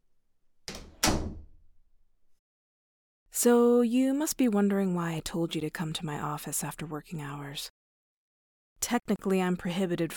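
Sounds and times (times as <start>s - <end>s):
door swinging shut and latching: 0.7s - 1.6s
speech: 3.4s - 7.8s, 8.8s - 10.1s.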